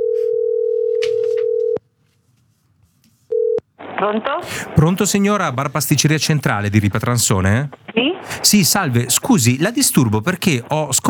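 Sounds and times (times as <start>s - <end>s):
telephone ringing tone on an outgoing call to a café-pastry shop in Italy: 0.0s - 1.8s, 3.3s - 3.6s
speech: 4.0s - 11.0s.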